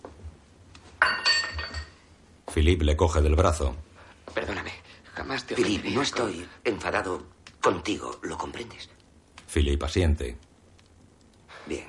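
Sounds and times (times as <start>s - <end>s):
broken glass goblet landing in a fire: 1.0s - 2.0s
ringing rattle of a broken glass goblet: 1.0s - 2.0s
speech: 2.6s - 3.9s, 5.3s - 10.5s, 11.7s - 11.8s.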